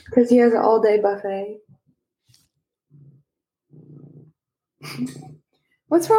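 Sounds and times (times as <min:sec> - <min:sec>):
speech: 0:00.0 - 0:01.7, 0:04.8 - 0:06.1
fat cat purring: 0:02.9 - 0:04.4.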